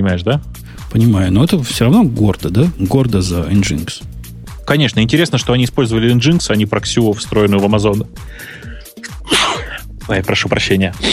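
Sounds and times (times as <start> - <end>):
speech: 0.0 - 8.6, 10.1 - 11.1
man sneezing: 9.0 - 10.0.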